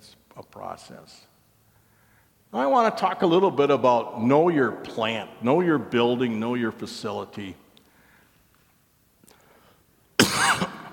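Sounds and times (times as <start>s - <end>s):
speech: 0.6s - 1.4s, 2.5s - 7.6s
harsh cough from a tickle in the throat: 10.2s - 10.9s.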